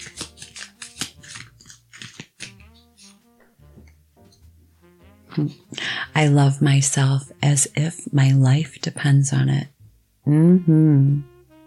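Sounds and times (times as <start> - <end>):
deck of affirmation cards being shuffled: 0.0 - 3.3
speech: 5.4 - 9.7, 10.3 - 11.3.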